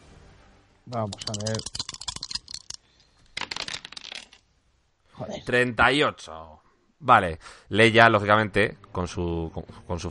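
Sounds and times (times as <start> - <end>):
speech: 0.9 - 1.9, 5.2 - 10.1
ten six-sided dice rattling across a hard surface: 0.9 - 4.4.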